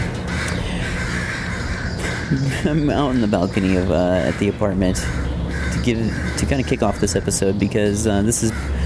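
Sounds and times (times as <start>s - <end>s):
outdoor city hum in the West End of Vancouver: 0.0s - 8.8s
crows cawing in the West End of Vancouver: 0.2s - 7.4s, 8.3s - 8.8s
laughter: 2.3s - 3.3s
speech: 2.3s - 8.8s.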